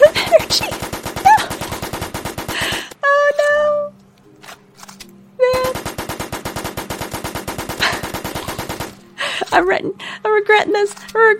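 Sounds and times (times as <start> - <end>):
assault rifle automatic fire in a video game: 0.1 - 2.9, 5.6 - 9.1
speech: 9.6 - 11.3.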